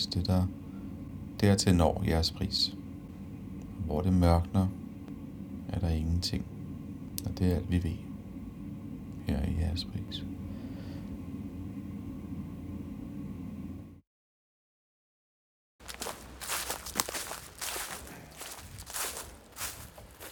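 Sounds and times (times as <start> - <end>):
low droning hum: 0.0 - 14.0, 15.8 - 20.2
speech: 0.1 - 0.6, 1.4 - 2.8, 3.8 - 4.8, 5.7 - 6.5, 7.2 - 8.1, 9.3 - 10.3
footsteps crunching along a forest avenue path outdoors: 15.8 - 20.2.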